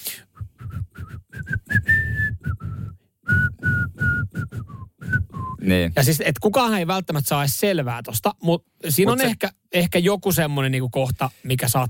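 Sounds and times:
person whistling a short lively tune: 0.1s - 5.7s
speech: 5.6s - 11.8s.

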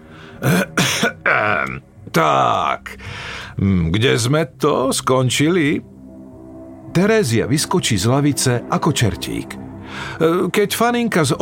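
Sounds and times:
speech: 0.4s - 0.7s, 1.7s - 6.0s, 6.9s - 11.4s
older man clearing his throat seated at a table: 0.4s - 1.8s.

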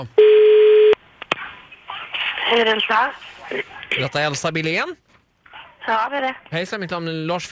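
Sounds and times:
speech: 0.0s - 0.4s, 2.5s - 5.0s, 5.8s - 7.5s
ringing tone of an outgoing phone call: 0.2s - 1.0s.

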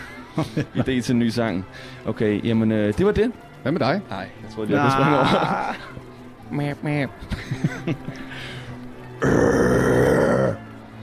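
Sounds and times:
laughter: 0.0s - 1.2s, 4.7s - 6.1s, 7.2s - 8.6s
speech: 0.4s - 8.6s, 9.2s - 9.9s
loud drawn-out rough burp: 9.2s - 10.6s
short grunting vocal sounds: 9.2s - 10.6s.

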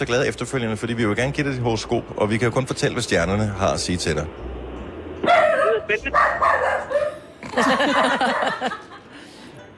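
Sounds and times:
speech: 0.0s - 4.6s, 5.9s - 7.0s, 7.6s - 8.9s
dog barking in short bursts: 5.2s - 7.2s
people laughing in a room: 7.4s - 9.3s.

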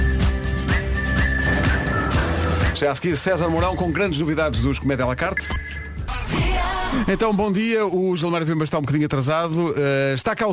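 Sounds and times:
dense musical backing with regular percussive hits: 0.0s - 7.4s
whistled sponsor jingle: 0.8s - 3.2s
speech: 2.8s - 5.8s, 7.0s - 10.5s.

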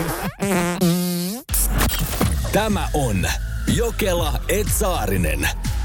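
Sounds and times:
fart noises: 0.0s - 1.7s
speech: 0.4s - 0.8s, 2.6s - 5.7s.

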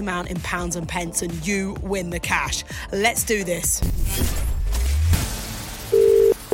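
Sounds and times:
speech: 0.0s - 4.5s
electronic telephone ring tone: 5.9s - 6.5s.

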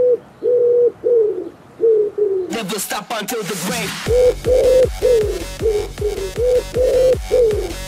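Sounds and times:
pigeon cooing: 0.0s - 2.5s, 4.1s - 7.8s
four-on-the-floor electronic techno beat with sampled pigeon coos: 2.6s - 7.8s
speech: 2.6s - 7.8s.

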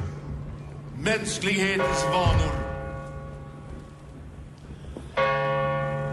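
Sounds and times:
speech: 1.0s - 2.7s
large church bell striking midnight on New Year's Eve: 1.6s - 3.7s, 5.2s - 6.1s.

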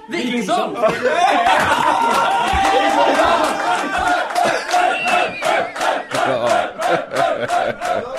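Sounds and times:
speech: 0.1s - 4.1s, 6.3s - 8.1s
rowdy shouting: 0.2s - 8.1s
group of men roaring and cheering at a bachelor party: 0.4s - 8.1s
bursts of laughter: 0.8s - 8.1s.

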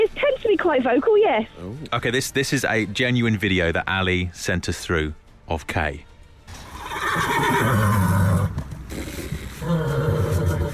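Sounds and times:
speech: 0.1s - 6.1s
horse neighing: 6.5s - 10.7s.

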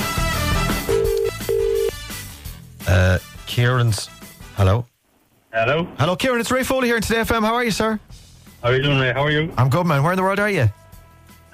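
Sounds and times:
quiet music: 0.0s - 4.8s, 5.6s - 11.5s
phone line ringing tone: 0.8s - 2.0s
speech: 2.9s - 4.9s, 5.5s - 10.8s.

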